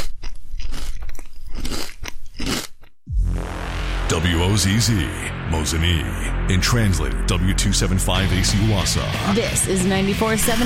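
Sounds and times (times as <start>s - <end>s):
crisp food being bitten and chewed: 0.0s - 3.0s
low sweep: 3.1s - 10.6s
steady hum: 3.1s - 10.6s
speech: 4.1s - 10.6s.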